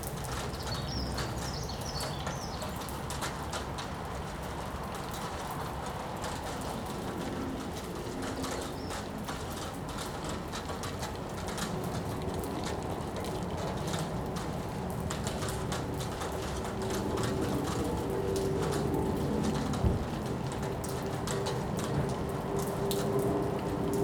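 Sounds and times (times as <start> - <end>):
rain outside work: 0.0 - 24.0.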